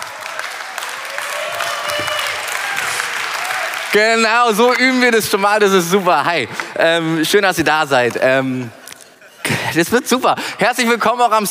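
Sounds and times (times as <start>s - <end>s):
audience clapping: 0.0s - 5.3s
speech: 3.9s - 8.8s, 9.7s - 11.4s.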